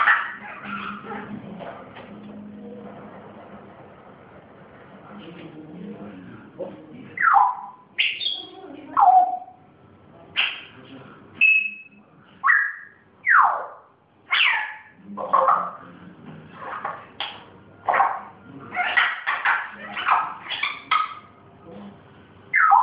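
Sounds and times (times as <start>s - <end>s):
pet grey parrot whistling, squawking and chattering: 7.2s - 9.5s, 11.4s - 15.7s, 18.7s - 21.3s, 22.5s - 22.8s.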